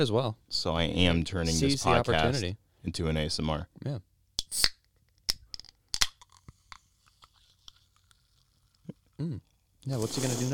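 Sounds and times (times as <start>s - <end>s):
speech: 0.0s - 4.8s, 9.2s - 10.5s
can of sparkling water cracking open: 4.4s - 8.8s
person sipping sparkling water: 6.3s - 10.5s.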